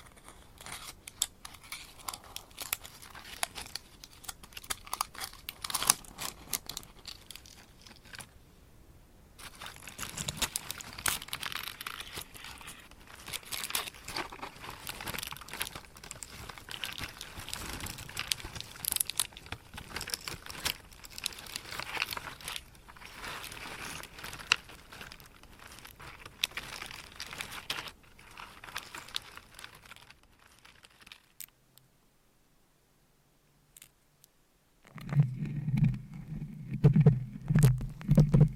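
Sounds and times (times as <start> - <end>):
bright papery scratching and crinkling: 0.0 - 8.4, 9.4 - 31.5, 34.9 - 38.5
louder lower tapping and rubbing: 34.9 - 38.5.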